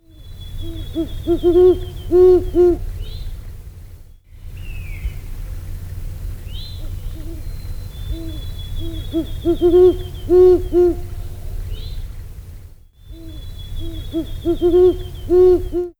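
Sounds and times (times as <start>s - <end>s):
Great Horned Owl call: 0.1s - 3.2s, 6.8s - 11.9s, 13.1s - 15.9s.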